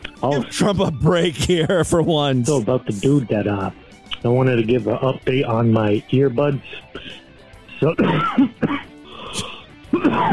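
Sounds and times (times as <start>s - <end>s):
speech: 0.2s - 7.2s, 7.8s - 9.4s, 10.0s - 10.3s
rough throat clearing: 6.8s - 10.3s.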